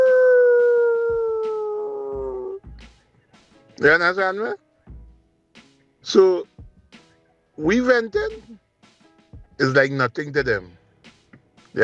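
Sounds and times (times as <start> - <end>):
dog howling: 0.0 - 2.6
speech: 3.8 - 4.6, 6.1 - 6.6, 7.6 - 8.6, 9.6 - 10.8.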